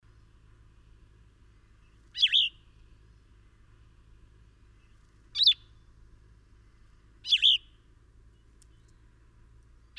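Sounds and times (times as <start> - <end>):
bird chirp: 1.5 - 3.8, 4.6 - 5.9, 6.6 - 9.2, 9.8 - 9.9.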